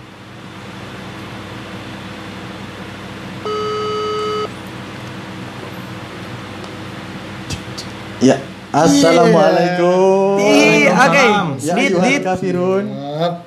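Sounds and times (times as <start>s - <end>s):
fan-like hum: 0.0s - 13.4s
phone ringing tone: 3.5s - 4.6s
speech: 8.2s - 13.4s.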